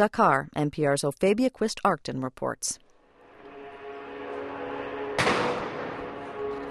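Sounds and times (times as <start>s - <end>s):
speech: 0.0s - 2.8s
grenade thrown by riot police bursting at a protest: 4.8s - 6.6s.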